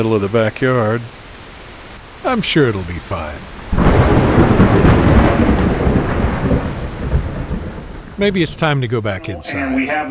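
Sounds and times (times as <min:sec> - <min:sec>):
speech: 0:00.0 - 0:01.2, 0:02.2 - 0:04.2, 0:08.2 - 0:10.0
heavy rain during a thunderstorm: 0:00.0 - 0:10.0
deep continuous rumbling thunder during a thunderstorm: 0:03.5 - 0:08.6.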